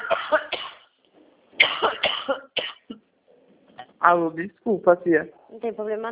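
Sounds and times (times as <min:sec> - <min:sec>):
harsh coughing fit: 0:00.0 - 0:00.9, 0:01.6 - 0:03.0
speech: 0:04.0 - 0:06.1.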